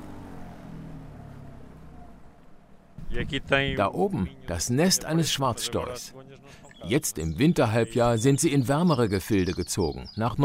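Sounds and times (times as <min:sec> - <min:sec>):
small boat's outboard motor droning on the Rio Coa river: 0:00.0 - 0:03.0
wind: 0:00.0 - 0:10.4
speech: 0:03.1 - 0:10.4.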